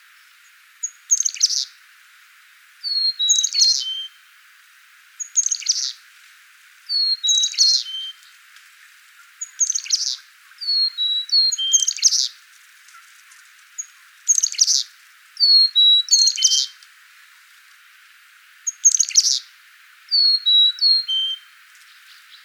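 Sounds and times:
Carolina chickadee calling: 0.8 - 1.8, 2.8 - 4.2, 5.2 - 6.0, 6.9 - 8.3, 9.2 - 16.8, 18.7 - 19.5, 20.1 - 22.4.

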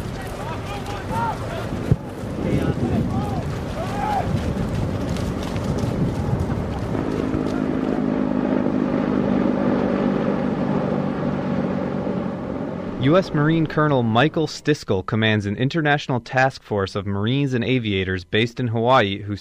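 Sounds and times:
faint indistinct voices: 0.0 - 4.4, 12.9 - 19.3
attack helicopters roaring overhead: 0.0 - 14.7
steady engine hum: 0.0 - 14.8
speech: 13.1 - 19.3.

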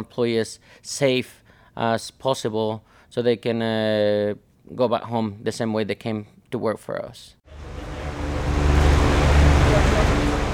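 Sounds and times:
speech: 0.0 - 7.7
fans blowing heat out of a food truck: 7.5 - 10.5
low mechanical hum: 7.5 - 10.5.

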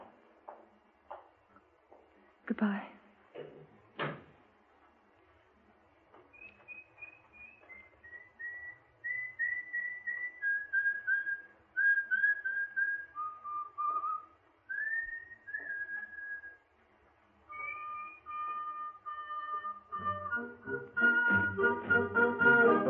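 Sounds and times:
speech: 2.5 - 3.0
person whistling a short wandering tune: 6.3 - 16.6, 17.5 - 22.7.

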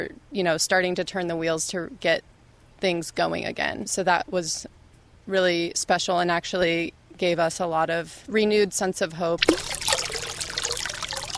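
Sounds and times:
speech: 0.0 - 9.8
liquid trickling from a new distillation still in operation: 9.4 - 11.3.

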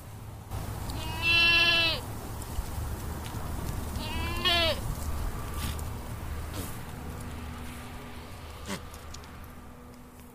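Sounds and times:
steady outdoor hum: 0.0 - 10.3
goats bleating in a fenced grazing pen: 0.9 - 2.0, 4.0 - 4.8.

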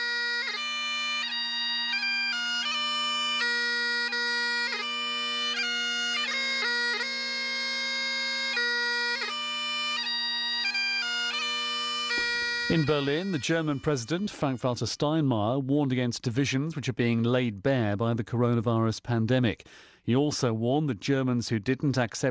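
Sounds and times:
lone bagpiper playing a tribute in Inverness, Scotland: 0.0 - 15.2
speech: 12.7 - 22.2.

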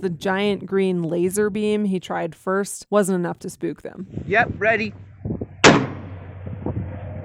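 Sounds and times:
speech: 0.0 - 5.4
low quiet rumble: 4.0 - 7.2
single gunshot fired to scare shoveler ducks off the water of an open pit mine: 5.6 - 7.0.

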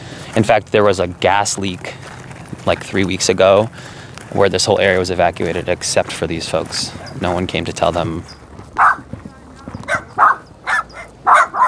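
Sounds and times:
low murmur: 0.0 - 11.3
speech: 0.4 - 8.9
dogs yapping: 6.9 - 7.3, 8.3 - 11.6.

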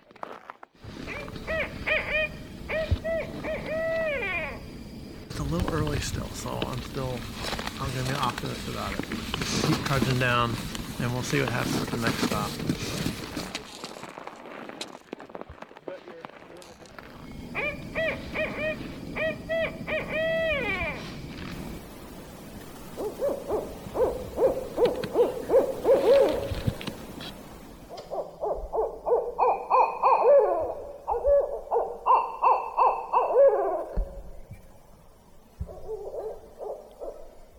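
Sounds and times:
barred owls hooting and calling to each other at night: 0.9 - 10.4, 17.0 - 34.3, 35.6 - 37.3
speech: 5.5 - 13.1.

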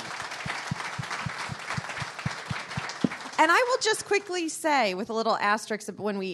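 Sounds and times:
sizable audience applauding: 0.0 - 4.2
speech: 3.4 - 6.3.

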